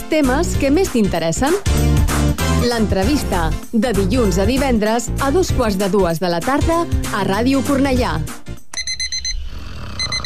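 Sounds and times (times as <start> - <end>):
speech: 0.1 - 1.9, 2.6 - 8.4
alarm clock ringing with rapid shrill electronic beeps: 8.7 - 10.2.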